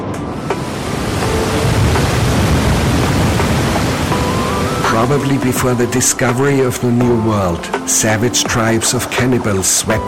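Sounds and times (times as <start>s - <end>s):
large waterfall roaring: 0.0s - 8.0s
speech: 5.0s - 10.0s.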